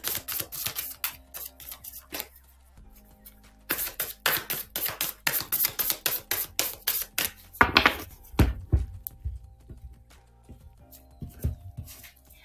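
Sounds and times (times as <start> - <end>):
oracle cards clicking and flicking as drawn from a deck: 0.0 - 2.3, 3.7 - 8.6
oracle cards rubbing and shuffling: 0.0 - 8.7.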